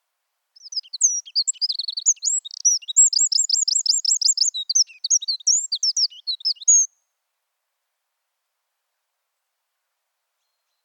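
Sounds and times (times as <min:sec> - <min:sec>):
Eurasian wren Troglodytes troglodytes song: 0:00.6 - 0:07.0.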